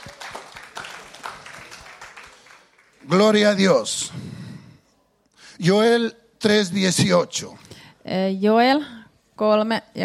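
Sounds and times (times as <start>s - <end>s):
sharper rhythmic claps: 0.0s - 3.2s
audience applauding: 0.0s - 3.8s
speech: 3.1s - 4.3s, 5.6s - 10.0s.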